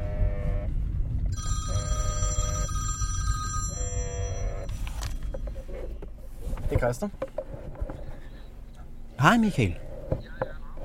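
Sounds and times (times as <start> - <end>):
low rumble of outdoor noise: 0.0 - 10.8
phone ringing with electronic tone bursts during an outgoing call: 1.3 - 5.8
speech: 6.7 - 7.3, 9.2 - 10.2.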